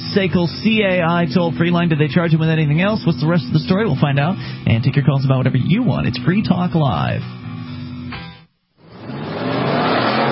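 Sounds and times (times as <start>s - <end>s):
speech: 0.2s - 7.4s
sports car engines roaring in an endurance race at Sebring International Raceway: 8.8s - 10.2s.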